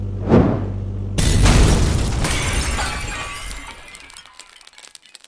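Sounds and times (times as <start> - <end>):
burning truck roaring and crackling: 0.2 - 0.8
truck exploding with shattering debris: 0.2 - 5.2.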